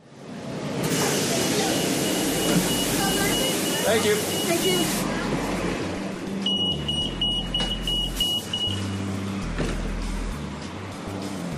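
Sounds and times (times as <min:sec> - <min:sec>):
city bus in Portland Oregon with a steady low engine drone: 0:00.0 - 0:11.5
high piercing city bus door-warning beeps: 0:01.0 - 0:05.0, 0:06.4 - 0:09.0
speech: 0:03.9 - 0:05.1.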